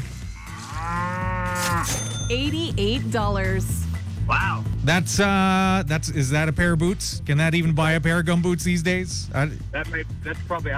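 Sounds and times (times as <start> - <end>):
cow mooing: 0.2 - 2.3
speech: 1.8 - 10.7.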